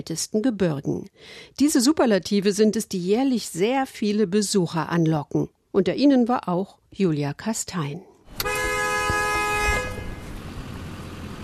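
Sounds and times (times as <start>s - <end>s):
speech: 0.0s - 8.1s
long loud car horn blaring: 8.3s - 10.4s
car engines idling in stopped traffic: 8.4s - 11.4s.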